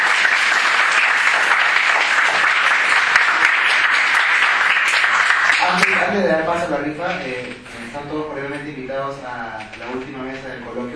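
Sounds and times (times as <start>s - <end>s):
steady dense applause from a crowd: 0.0s - 6.2s
speech: 6.2s - 10.9s.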